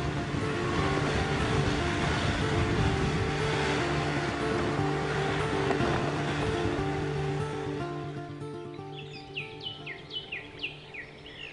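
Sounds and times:
SUV engine droning, struggling up a hill on a mountain road: 0:00.0 - 0:11.5
heavy rumbling road noise on a mountain road: 0:00.0 - 0:11.5
bird chirps: 0:08.6 - 0:11.5.

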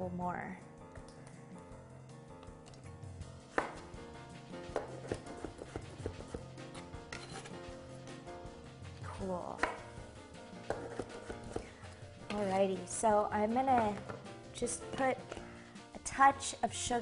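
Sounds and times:
speech: 0:00.0 - 0:00.7, 0:09.2 - 0:09.8, 0:12.4 - 0:15.3, 0:16.2 - 0:16.9
knife slicing strawberries very thin on a cutting board: 0:04.7 - 0:07.6, 0:10.7 - 0:11.7.

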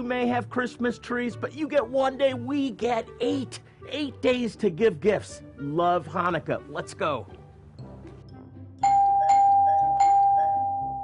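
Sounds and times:
speech: 0:00.0 - 0:07.4
doorbell chiming bright ringing tones: 0:08.8 - 0:11.0.

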